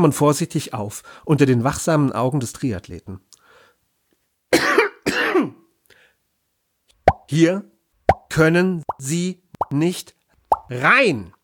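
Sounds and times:
speech: 0:00.0 - 0:03.4, 0:07.3 - 0:07.7, 0:08.3 - 0:11.4
harsh raspy coughs of a coughing fit: 0:04.5 - 0:05.6.

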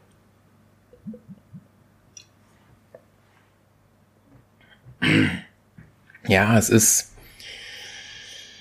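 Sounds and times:
person sipping a drink with gulping clicks: 0:00.9 - 0:02.3
person breathy throat-clearing exhale: 0:05.0 - 0:05.6
speech: 0:06.3 - 0:07.2.

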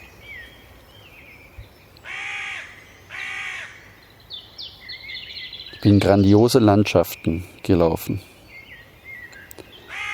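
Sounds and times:
fainter, higher chirps from other birds: 0:00.0 - 0:10.1
bird harsh caws: 0:02.0 - 0:03.8, 0:09.9 - 0:10.1
speech: 0:05.8 - 0:08.3.

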